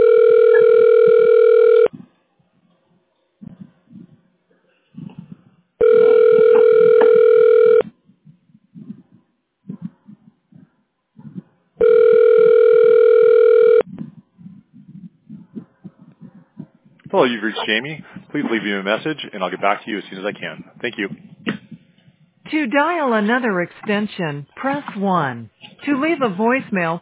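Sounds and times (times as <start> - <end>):
office telephone line ringing while a call is transferred: 0.0 - 1.9, 5.8 - 7.9, 11.8 - 13.9
speech: 17.3 - 21.3, 22.5 - 27.0.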